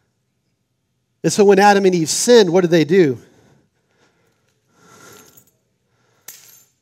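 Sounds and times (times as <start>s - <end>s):
speech: 1.2s - 3.3s
bunch of keys jangling: 4.3s - 6.7s.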